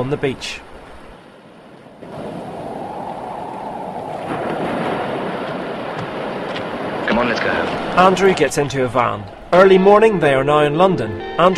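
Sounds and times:
speech: 0.0 - 0.7, 7.2 - 11.5
waves crashing against a large white rock on the coast: 0.0 - 9.6
wind noise on the coast: 2.0 - 10.4.

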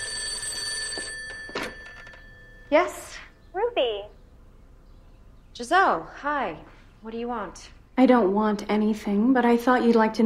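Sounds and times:
telephone ringing in an art studio: 0.0 - 3.0
speech: 2.7 - 4.2, 5.6 - 10.2.

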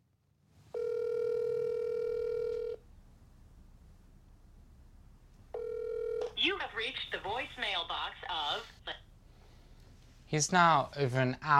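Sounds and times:
Skype call ringing with a steady electronic tone: 0.7 - 2.8, 5.5 - 6.8
speech: 6.8 - 9.1, 10.3 - 11.5.

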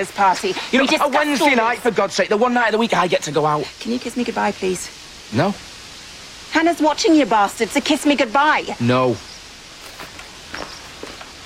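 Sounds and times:
speech: 0.0 - 5.7, 6.6 - 9.3
low noise: 0.0 - 11.4
footsteps of someone striding back to a house: 9.8 - 11.4.

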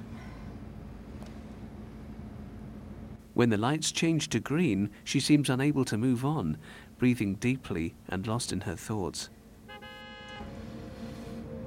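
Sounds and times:
low engine and traffic rumble: 0.0 - 11.6
speech: 3.4 - 9.4
car horn honk from a car behind: 9.6 - 10.9.

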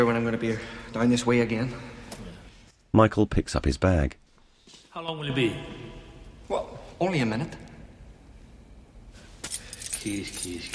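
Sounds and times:
speech: 0.0 - 2.0, 2.9 - 4.2, 5.0 - 5.8, 6.5 - 7.7, 10.0 - 10.7
low noise: 0.0 - 10.7
keys jangling: 9.4 - 10.7.

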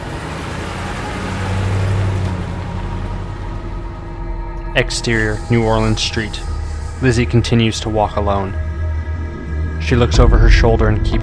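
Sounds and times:
car starting and driving away: 0.0 - 5.9
speech: 4.8 - 8.6, 9.8 - 11.2.

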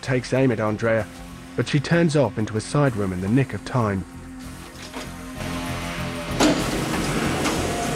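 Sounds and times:
speech: 0.0 - 4.2
sliding door rolling: 4.5 - 7.9.

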